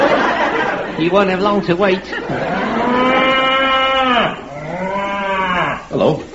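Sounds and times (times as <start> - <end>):
laughter: 0.0 - 3.5
speech: 1.0 - 3.2, 5.9 - 6.3
cow mooing: 2.3 - 5.9.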